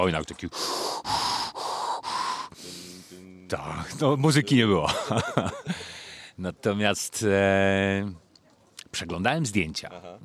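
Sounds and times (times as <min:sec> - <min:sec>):
speech: 0:00.0 - 0:01.2, 0:03.5 - 0:08.2, 0:08.9 - 0:10.2
voice imitating heavy rasping breathing through an oxygen mask: 0:00.0 - 0:03.8, 0:05.6 - 0:06.4
laughter: 0:04.0 - 0:06.1, 0:09.8 - 0:10.2.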